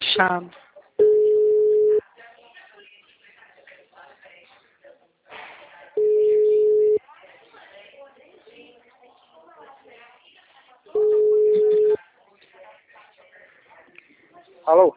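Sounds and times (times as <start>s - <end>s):
telephone busy tone after a dropped call: 1.0s - 2.0s, 6.0s - 7.0s, 11.0s - 12.0s.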